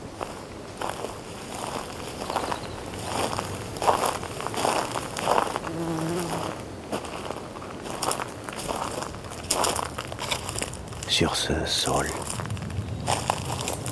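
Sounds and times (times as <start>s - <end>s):
footsteps crunching over dry brittle ground: 0.0s - 13.9s
faint insect-like buzz: 1.6s - 8.7s
speech: 11.2s - 12.4s.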